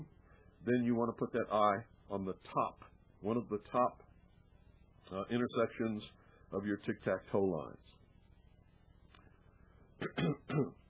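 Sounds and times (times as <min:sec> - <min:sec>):
speech: 0:00.6 - 0:04.0, 0:05.0 - 0:08.0, 0:10.0 - 0:10.8
person coughing: 0:10.0 - 0:10.8.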